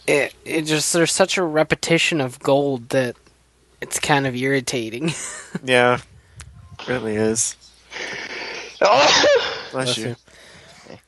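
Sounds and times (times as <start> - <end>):
speech: 0.0 - 3.2, 3.8 - 6.1, 6.9 - 8.2, 8.8 - 10.3
sneeze: 8.8 - 9.8
person exclaiming: 8.8 - 10.1.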